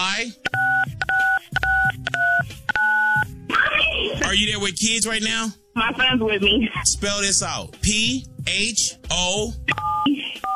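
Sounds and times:
speech: 0.0s - 0.5s, 4.4s - 10.5s
telephone keypad dialing tones as a caller keys in a code: 0.4s - 3.2s.

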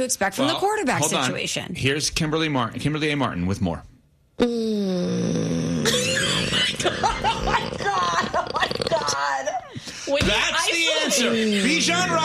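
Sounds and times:
speech: 0.0s - 4.8s, 6.8s - 12.2s
cartoonish snoring sound effect with groaning breaths and whistling tones: 4.4s - 9.5s
laughter: 6.0s - 12.2s.

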